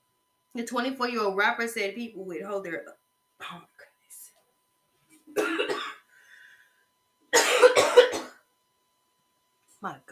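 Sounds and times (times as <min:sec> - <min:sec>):
speech: 0:00.5 - 0:03.8, 0:09.8 - 0:10.0
harsh coughing fit: 0:05.3 - 0:06.0, 0:07.3 - 0:08.4.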